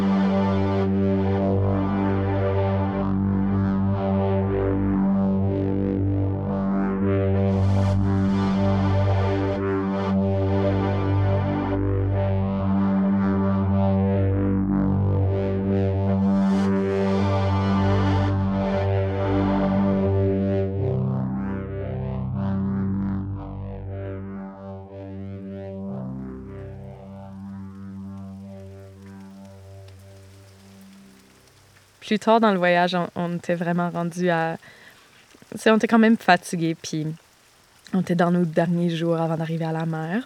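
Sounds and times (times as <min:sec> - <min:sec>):
layered synthesized drone with filtered textures: 0:00.0 - 0:31.4
speech: 0:32.1 - 0:34.8, 0:35.5 - 0:37.2, 0:37.9 - 0:40.2.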